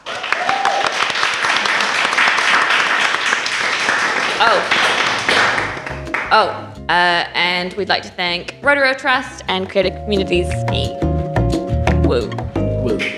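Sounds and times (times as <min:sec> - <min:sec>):
whoops and cheers: 0:00.0 - 0:01.2
crowd applauding for artists: 0:00.0 - 0:06.3
speech: 0:04.4 - 0:04.8, 0:06.3 - 0:11.0, 0:12.1 - 0:13.1.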